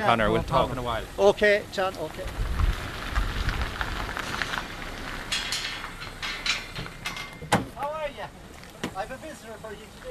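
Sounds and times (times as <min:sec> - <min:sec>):
speech: 0:00.0 - 0:02.5, 0:09.0 - 0:10.0
steady dense rain: 0:00.0 - 0:10.0
rushing wind with sharp gusts: 0:02.2 - 0:06.1.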